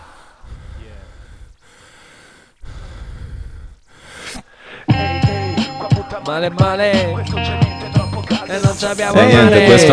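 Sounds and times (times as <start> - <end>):
heavy rasping breathing at the end of a song: 0.0 - 6.1
bright instrumental music: 4.9 - 9.9
speech: 6.3 - 7.8, 8.5 - 9.9.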